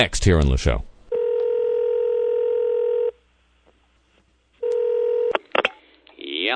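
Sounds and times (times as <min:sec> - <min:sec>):
speech: 0:00.0 - 0:00.9
telephone ringback tone: 0:01.1 - 0:03.2, 0:04.6 - 0:05.3.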